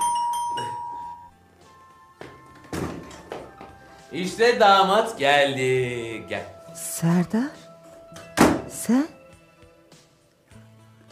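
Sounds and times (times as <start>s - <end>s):
doorbell ringing with a sustained chime: 0.0s - 1.4s
speech: 4.1s - 7.6s, 8.9s - 9.2s.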